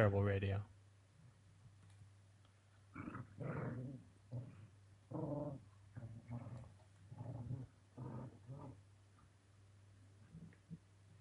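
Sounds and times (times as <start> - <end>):
speech: 0.0 - 0.7, 5.1 - 5.6
dogs growling and whimpering: 3.0 - 8.8.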